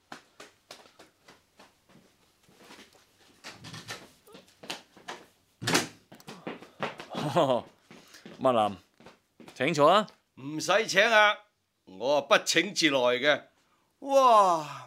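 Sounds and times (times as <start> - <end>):
footsteps crossing a room: 0.0 - 10.1
speech: 7.3 - 7.8, 8.4 - 8.8, 9.6 - 11.4, 12.0 - 14.8.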